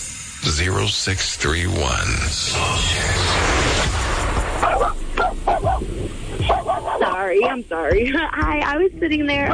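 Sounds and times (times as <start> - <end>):
speech: 0.6 - 4.0, 7.2 - 9.5
dog barking over a phone call: 4.6 - 5.9, 6.4 - 7.2.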